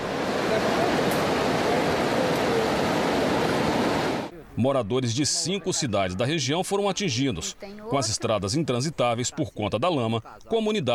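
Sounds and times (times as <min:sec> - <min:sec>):
rushing floodwater from a burst dam: 0:00.0 - 0:04.3
speech: 0:04.6 - 0:10.9.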